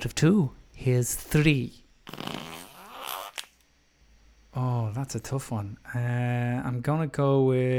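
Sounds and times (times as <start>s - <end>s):
speech: 0.0s - 2.2s, 4.6s - 7.7s
buzzy sputtering fart: 2.0s - 3.6s.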